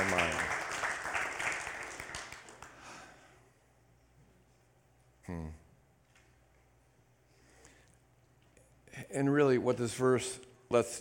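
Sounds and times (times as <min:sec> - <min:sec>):
room full of people clapping hands: 0:00.0 - 0:03.0
speech: 0:05.3 - 0:05.6, 0:09.1 - 0:10.9.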